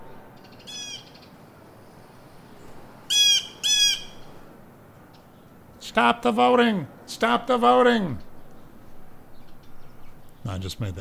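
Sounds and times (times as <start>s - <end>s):
crows cawing outdoors: 0.5s - 1.3s, 3.1s - 4.4s
speech: 6.0s - 8.3s, 10.4s - 10.9s.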